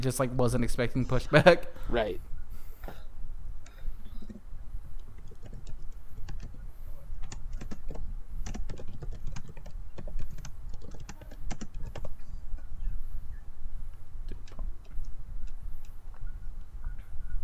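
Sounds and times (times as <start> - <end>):
speech: 0.0 - 2.3
rapid typing on a computer keyboard: 5.2 - 6.6, 7.2 - 12.7, 14.3 - 16.0.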